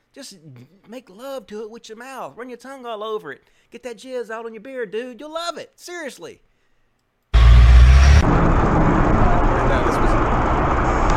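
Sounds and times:
speech: 0.2s - 6.5s
car engine and road rumble of a car pushing another car: 7.4s - 11.1s.

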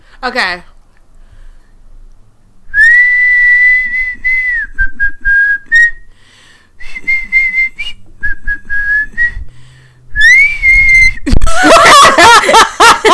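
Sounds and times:
person whistling an upbeat pop melody: 2.7s - 6.1s, 6.8s - 9.5s, 10.2s - 11.3s
loud laughter: 11.3s - 13.1s.

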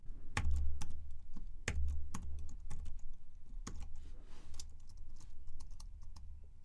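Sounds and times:
typing on a computer keyboard entering network switch commands: 0.3s - 3.9s, 4.5s - 6.3s.

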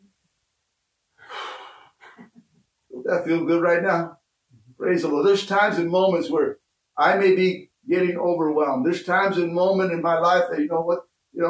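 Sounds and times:
congregation taking a deep breath together: 1.2s - 2.1s
speech: 3.1s - 4.2s, 4.8s - 11.4s.

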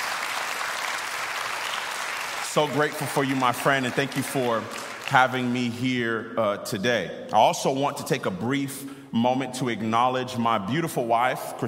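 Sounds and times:
large crowd applauding: 0.0s - 5.7s
speech: 2.6s - 11.6s.

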